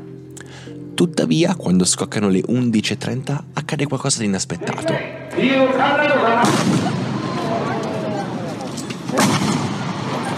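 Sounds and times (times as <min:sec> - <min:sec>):
speech: 0:00.7 - 0:07.0
crowd voices murmuring: 0:04.6 - 0:10.3
loud sharp gunshots with rumble: 0:06.4 - 0:07.5, 0:09.0 - 0:10.3.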